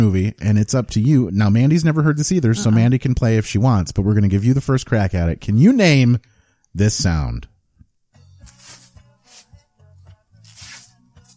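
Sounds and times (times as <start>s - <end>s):
speech: 0.0s - 7.5s
adhesive tape being pulled off and stuck onto a person's chest: 8.4s - 9.6s, 10.4s - 11.3s.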